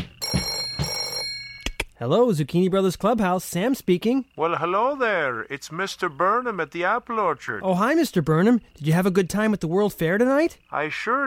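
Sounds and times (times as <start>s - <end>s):
telephone bell ringing: 0.0s - 1.8s
speech: 2.0s - 11.2s.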